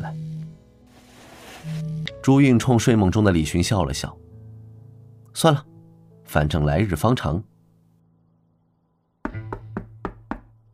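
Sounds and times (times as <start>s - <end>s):
speech: 2.3s - 4.3s, 5.4s - 5.7s, 6.3s - 7.5s
knocking on a door: 9.3s - 10.5s.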